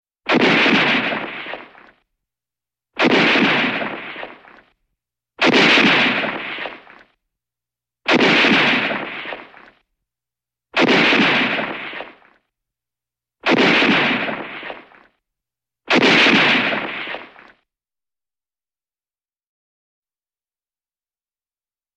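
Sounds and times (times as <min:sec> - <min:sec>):
German World War rifle shooting: 0:00.3 - 0:01.8, 0:03.0 - 0:04.6, 0:05.4 - 0:07.0, 0:08.1 - 0:09.7, 0:10.8 - 0:12.2, 0:13.4 - 0:15.0, 0:15.9 - 0:17.4.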